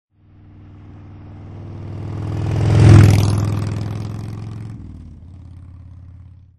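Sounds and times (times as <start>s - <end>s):
Harley motorcycle engine: 0.1s - 6.5s.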